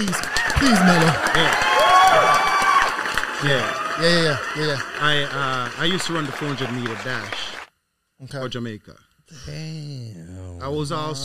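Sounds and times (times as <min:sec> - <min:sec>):
speech: 0:00.0 - 0:02.4, 0:03.4 - 0:07.5, 0:08.2 - 0:11.2
crowd clapping: 0:00.0 - 0:07.7.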